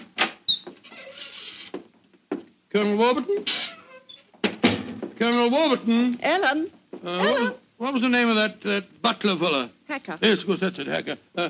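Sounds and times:
house door creaking open: 0.0 - 1.9, 3.4 - 5.1
speech: 2.8 - 3.6, 5.2 - 11.4.

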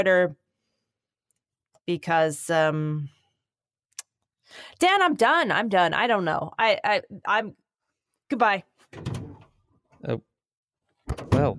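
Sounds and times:
speech: 0.0 - 0.4, 1.9 - 3.2, 4.5 - 7.6, 8.3 - 9.2, 10.0 - 10.3
door opening and closing: 8.8 - 9.6, 11.0 - 11.5.

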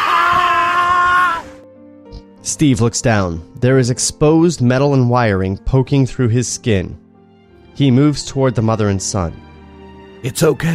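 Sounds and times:
woman screaming in horror: 0.0 - 1.6
speech: 2.5 - 7.0, 7.8 - 9.5, 10.2 - 10.7.

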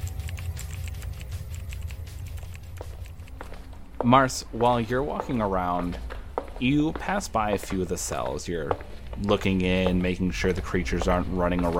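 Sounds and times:
hard rapid typing on a computer keyboard: 0.0 - 3.4
low hum: 0.0 - 11.7
speech: 4.0 - 11.7.

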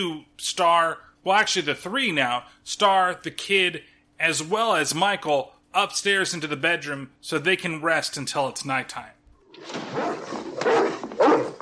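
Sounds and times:
speech: 0.0 - 10.9
dog barking and growling protectively: 9.7 - 11.6
dog yelping whinily: 9.9 - 11.6.

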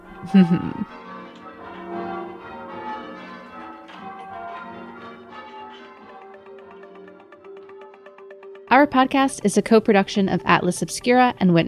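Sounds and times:
church bells ringing: 0.0 - 7.8
speech: 0.2 - 1.0, 8.8 - 11.6.

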